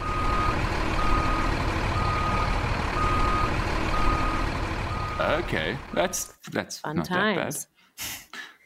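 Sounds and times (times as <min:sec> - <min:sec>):
delivery truck reversing beeps: 0:00.0 - 0:05.4
delivery truck low engine rumble: 0:00.0 - 0:06.2
speech: 0:05.2 - 0:08.2.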